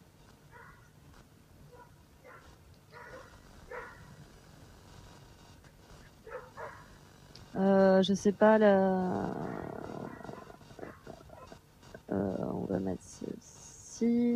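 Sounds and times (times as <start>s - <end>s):
dogs barking: 0.5s - 0.9s, 1.7s - 4.2s, 6.2s - 7.0s, 9.3s - 11.6s
speech: 8.0s - 9.5s, 12.8s - 14.3s.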